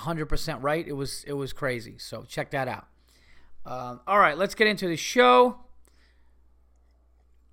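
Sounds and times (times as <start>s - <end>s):
speech: 0.0s - 2.9s, 3.6s - 5.6s
black coffee sipping: 6.6s - 7.5s.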